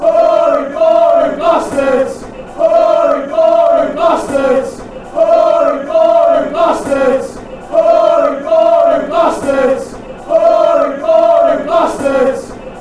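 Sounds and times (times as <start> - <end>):
fans chanting: 0.0 - 12.8.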